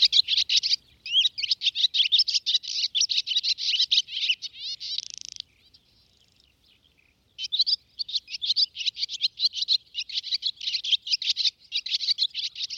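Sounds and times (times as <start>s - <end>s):
barn swallow twittering song: 0.0s - 12.7s.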